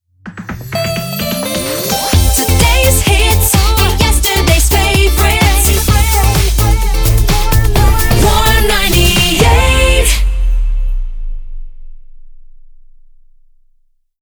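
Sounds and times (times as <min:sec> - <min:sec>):
jingle: 0:00.4 - 0:11.2.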